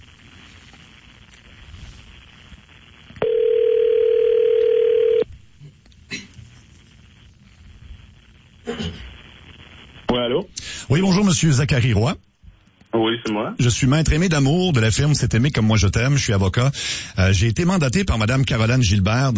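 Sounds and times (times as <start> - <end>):
telephone ringback tone after dialing: 3.2 - 5.3
speech: 10.9 - 12.3, 13.6 - 19.3.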